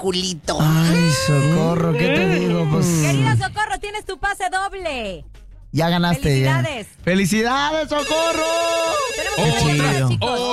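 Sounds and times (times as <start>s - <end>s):
speech: 0.0s - 10.5s
telephone ringing with loud electronic melodic ringtone: 8.0s - 10.1s.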